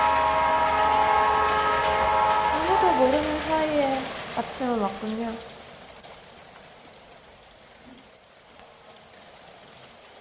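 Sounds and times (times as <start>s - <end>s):
train horn blaring as train pulls into station: 0.0s - 4.2s
speech: 3.0s - 5.5s.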